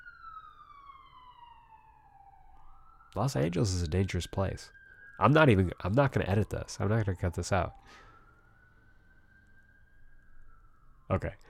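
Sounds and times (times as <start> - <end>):
emergency vehicle siren passing outside in Los Angeles: 0.0 - 11.4
traffic rumble in Los Angeles: 2.5 - 11.4
speech: 3.1 - 8.0, 11.1 - 11.4.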